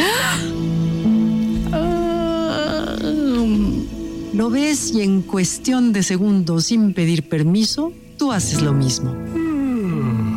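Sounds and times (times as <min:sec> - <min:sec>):
long enormous drawn-out yawn: 0:00.0 - 0:00.5, 0:01.7 - 0:03.9, 0:09.4 - 0:10.3
speech: 0:04.4 - 0:09.4.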